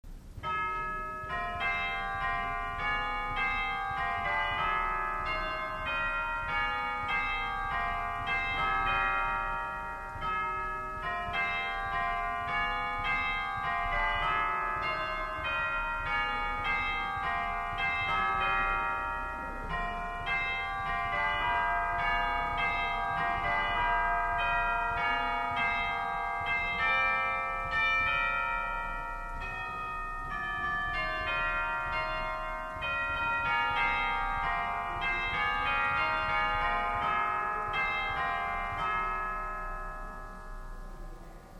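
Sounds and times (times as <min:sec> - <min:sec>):
organ great chimes: 0:00.4 - 0:41.5.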